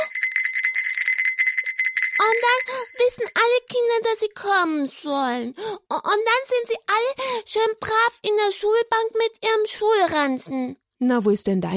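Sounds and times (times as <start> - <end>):
school bell ringing with rapid metallic clatter: 0.0 - 3.5
speech: 2.2 - 11.7.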